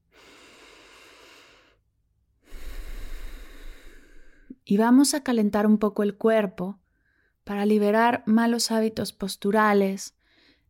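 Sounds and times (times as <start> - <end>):
slow deep breathing during a guided body warm-up and relaxation practice: 0.0 - 4.6
speech: 4.7 - 6.8, 7.5 - 10.2.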